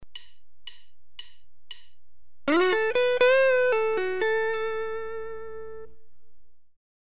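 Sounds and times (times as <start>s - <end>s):
typical Box III guitar lick: 2.5s - 6.0s.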